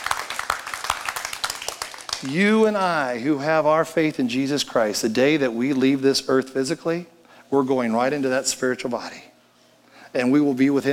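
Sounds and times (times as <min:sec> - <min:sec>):
audience clapping: 0:00.0 - 0:02.4
speech: 0:02.2 - 0:09.3, 0:10.1 - 0:10.9.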